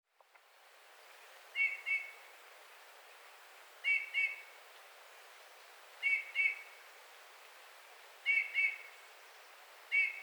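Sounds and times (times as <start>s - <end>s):
quiet hiss: 0.1s - 10.2s
Eurasian bullfinch Pyrrhula pyrrhula soft piping whistled calls: 1.6s - 2.2s, 3.8s - 4.5s, 6.0s - 6.7s, 8.2s - 8.9s, 9.9s - 10.2s.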